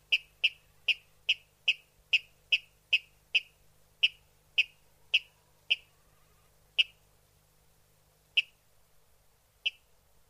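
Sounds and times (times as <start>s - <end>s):
Water rail uttering short dry ticking notes: 0.0s - 5.9s, 6.8s - 7.0s, 8.3s - 8.6s, 9.6s - 9.9s.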